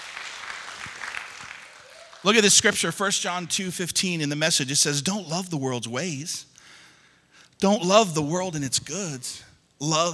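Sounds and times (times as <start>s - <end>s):
church audience applauding in a large room: 0.0s - 2.8s
speech: 2.2s - 6.5s, 7.6s - 10.1s.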